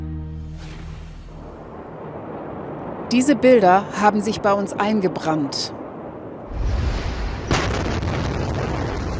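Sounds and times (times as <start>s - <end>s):
ammonium nitrate explosion in Beirut: 0.5s - 3.6s, 5.8s - 9.1s
speech: 3.1s - 5.8s.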